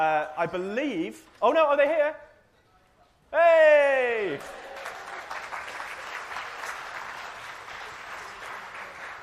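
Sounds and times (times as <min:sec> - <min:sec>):
speech: 0:00.0 - 0:02.3, 0:03.3 - 0:04.8
audience applauding: 0:04.3 - 0:09.2.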